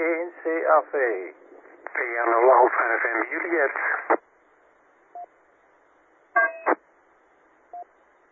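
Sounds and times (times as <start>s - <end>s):
steady radio hiss on an amateur radio net: 0.0s - 4.3s
speech: 0.7s - 1.4s, 2.0s - 4.2s
short electronic beeps from an amateur radio transmitter: 6.4s - 6.8s.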